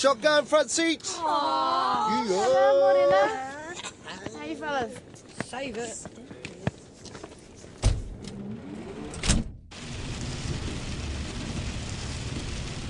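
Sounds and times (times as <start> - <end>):
speech: 0.0 - 3.9, 4.5 - 6.2
steady rain hissing outside a van: 9.7 - 12.8.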